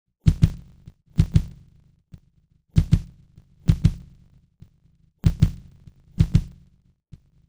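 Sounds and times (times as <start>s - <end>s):
drum: 0.2s - 1.7s, 2.8s - 4.3s, 5.2s - 6.7s.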